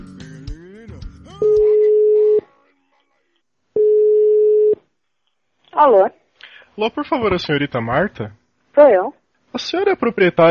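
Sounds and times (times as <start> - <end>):
telephone ringback tones of an outgoing call: 1.4 - 2.5, 3.8 - 4.8
speech: 5.8 - 6.2, 6.8 - 10.4.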